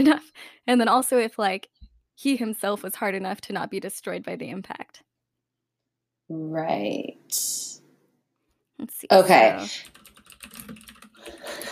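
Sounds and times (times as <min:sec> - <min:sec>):
speech: 0:00.0 - 0:05.1, 0:06.3 - 0:07.8, 0:08.8 - 0:10.0
rapid clicky typing on a computer keyboard: 0:09.8 - 0:11.7.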